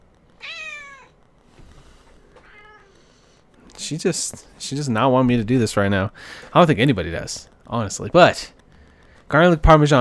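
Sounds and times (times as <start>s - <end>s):
faint room noise: 0.0s - 9.9s
cat meowing: 0.4s - 1.2s, 2.4s - 2.9s
speech: 3.8s - 8.6s, 9.3s - 9.9s.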